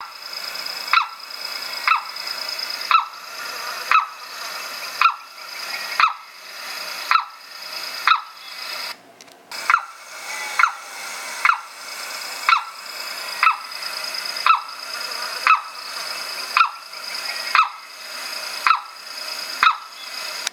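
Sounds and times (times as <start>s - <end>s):
limpkin calling: 1.8s - 6.3s, 9.6s - 11.8s, 12.4s - 19.0s, 19.6s - 20.3s.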